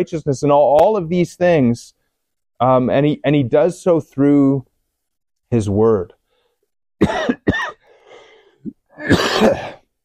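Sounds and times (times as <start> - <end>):
speech: 0.0 - 2.0, 2.6 - 4.7, 5.5 - 6.2, 7.0 - 7.4, 9.0 - 9.8
person coughing with a throaty rattle: 7.0 - 7.8, 8.7 - 9.9
raspy breath: 7.8 - 8.7.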